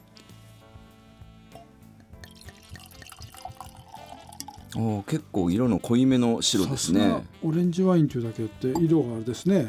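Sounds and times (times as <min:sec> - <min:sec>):
music: 0:00.0 - 0:09.6
light glassy tinks: 0:01.6 - 0:04.8, 0:08.8 - 0:09.0
orange wine pouring into a glass: 0:01.6 - 0:05.0
speech: 0:04.7 - 0:09.6.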